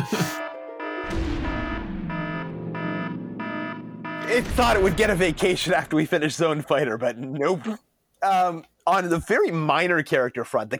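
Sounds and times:
loud electronic alarm with harsh buzzy tones: 0:00.0 - 0:05.4
speech: 0:04.3 - 0:10.7.

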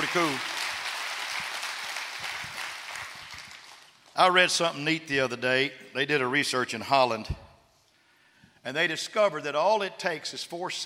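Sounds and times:
congregation applauding: 0:00.0 - 0:04.0
speech: 0:00.1 - 0:00.5, 0:04.2 - 0:07.4, 0:08.6 - 0:10.8.

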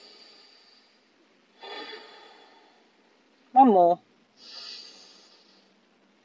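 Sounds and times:
slow deep breaths drawn in through the nose: 0:00.0 - 0:02.9, 0:04.4 - 0:05.8
speech: 0:03.6 - 0:04.1.

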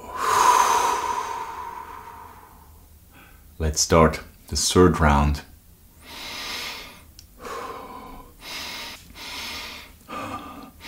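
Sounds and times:
rapid deep breathing in and out during a guided breathing exercise: 0:00.0 - 0:03.5, 0:06.0 - 0:10.8
speech: 0:03.6 - 0:05.5.

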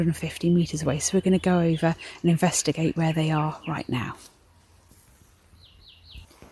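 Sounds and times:
speech: 0:00.0 - 0:04.4
nightingale singing at night: 0:00.6 - 0:04.2, 0:05.3 - 0:06.4.

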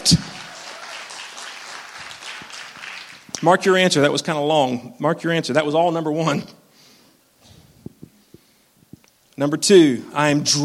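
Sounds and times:
church audience clapping and applauding: 0:00.0 - 0:03.4
speech: 0:00.1 - 0:00.3, 0:03.4 - 0:06.6, 0:09.4 - 0:10.6.

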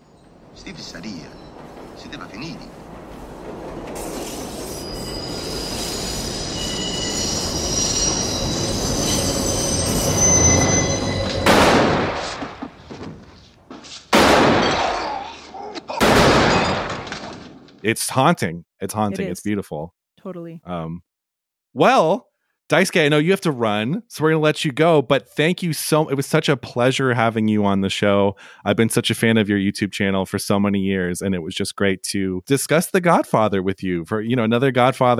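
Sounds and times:
train rumbling past: 0:00.0 - 0:13.7
speech: 0:00.6 - 0:04.9, 0:17.8 - 0:21.1, 0:21.7 - 0:35.1
high metallic train wheel squeal: 0:03.6 - 0:11.5
loud sharp gunshots in a film scene: 0:11.4 - 0:12.7, 0:14.1 - 0:15.2, 0:15.9 - 0:17.6
voice murmuring: 0:18.8 - 0:19.5.

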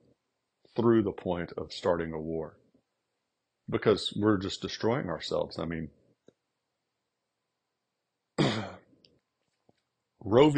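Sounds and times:
speech: 0:00.8 - 0:02.6, 0:03.7 - 0:06.0, 0:10.2 - 0:10.5
person clearing throat after swallowing something wrong: 0:08.4 - 0:08.8.

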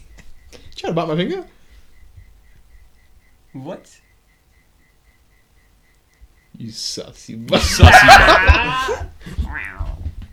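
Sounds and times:
speech: 0:00.8 - 0:01.6, 0:03.6 - 0:04.1, 0:06.6 - 0:09.8
laughter: 0:07.5 - 0:09.1
kitten meowing: 0:09.5 - 0:10.0.

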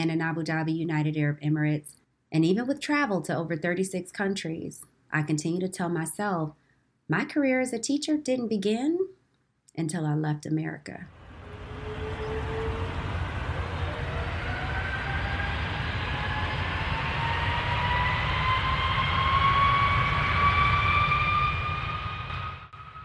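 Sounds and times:
speech: 0:00.0 - 0:09.2, 0:09.8 - 0:11.2
aircraft jet engines roaring at takeoff: 0:11.1 - 0:23.0.

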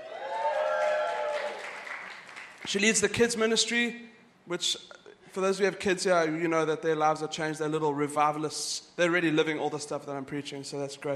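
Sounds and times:
audience cheering and applauding: 0:00.0 - 0:02.7
speech: 0:02.7 - 0:11.1.

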